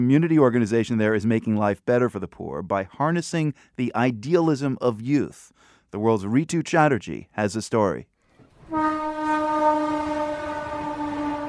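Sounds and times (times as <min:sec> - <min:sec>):
speech: 0:00.0 - 0:08.1
train horn blast beside railroad tracks in Kolkata India: 0:08.6 - 0:11.4.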